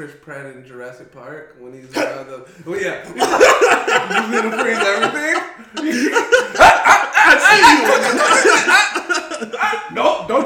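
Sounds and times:
speech: 0:00.0 - 0:06.7, 0:07.3 - 0:08.8
person chuckling: 0:03.2 - 0:09.9
dog barking and yipping: 0:06.5 - 0:08.8.

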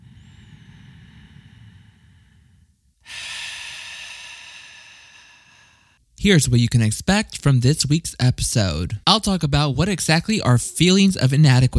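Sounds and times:
loud airy inhale: 0:00.0 - 0:06.0
slow breath through cupped hands: 0:00.0 - 0:06.1
speech: 0:06.2 - 0:11.7.

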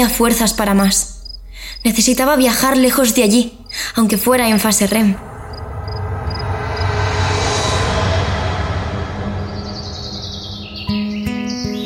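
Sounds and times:
speech: 0:00.0 - 0:05.3
steady loud low rumble: 0:04.3 - 0:11.5
short high bird chirps: 0:09.4 - 0:11.8.

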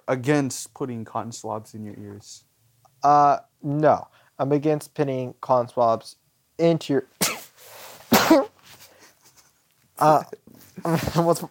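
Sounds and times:
speech: 0:00.1 - 0:07.2, 0:08.3 - 0:08.5, 0:10.0 - 0:11.4
person sneezing: 0:07.2 - 0:08.6.

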